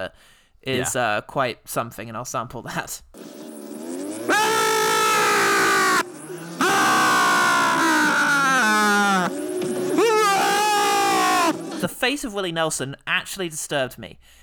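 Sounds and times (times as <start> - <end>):
speech: 0.0 - 3.4, 11.8 - 14.4
man locked in a room screaming in terror: 4.3 - 11.8.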